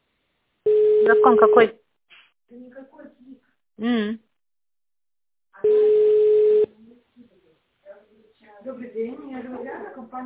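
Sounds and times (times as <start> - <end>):
unanswered telephone call ringing: 0.7 - 1.7, 5.6 - 6.7
speech: 1.1 - 1.8, 2.5 - 4.3, 8.4 - 10.2.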